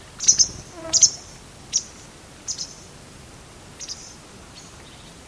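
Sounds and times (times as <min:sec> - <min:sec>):
bird calling in short very high chirps: 0:00.2 - 0:02.9, 0:03.7 - 0:05.2.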